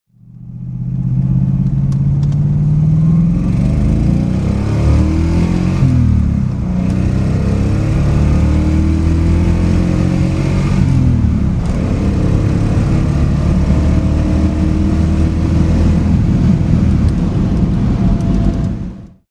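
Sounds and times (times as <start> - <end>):
DeTomaso Pantera GTS engine accelerating: 0.2 - 19.2.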